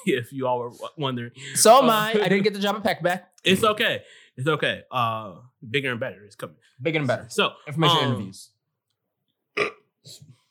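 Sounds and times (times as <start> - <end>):
speech: 0.0 - 8.6, 9.6 - 10.4
burp: 9.6 - 10.2.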